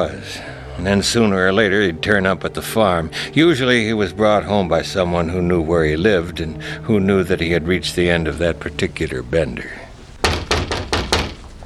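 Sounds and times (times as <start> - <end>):
speech: 0.0 - 9.8
firm knocks on a wooden door: 10.2 - 11.5.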